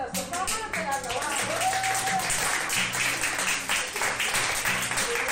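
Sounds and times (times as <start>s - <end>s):
doctors and nurses applauding in a hospital intensive care unit: 0.2s - 5.2s.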